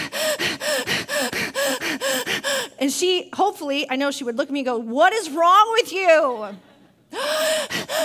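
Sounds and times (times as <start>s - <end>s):
person taking rapid rhythmic gasping breaths while sitting having coffee: 0.0s - 2.8s, 7.1s - 8.0s
speech: 2.8s - 8.0s.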